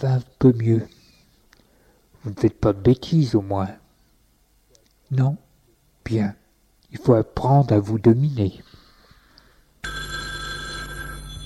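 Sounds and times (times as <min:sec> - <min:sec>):
speech: 0:00.0 - 0:01.0, 0:02.2 - 0:03.8, 0:05.1 - 0:05.4, 0:06.0 - 0:08.7
telephone bell ringing: 0:09.8 - 0:11.4.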